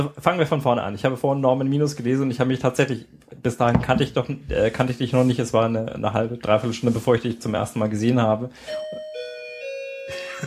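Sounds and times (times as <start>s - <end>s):
speech: 0.0s - 9.3s
electronic doorbell chiming a short melody: 8.6s - 10.4s.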